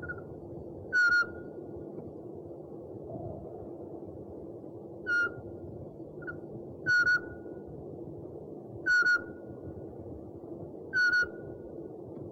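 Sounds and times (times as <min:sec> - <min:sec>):
steady low background noise: 0:00.0 - 0:12.3
owl giving a short whistled call with a trailing tail: 0:00.9 - 0:01.4, 0:06.2 - 0:07.3, 0:08.9 - 0:09.4, 0:11.0 - 0:11.4.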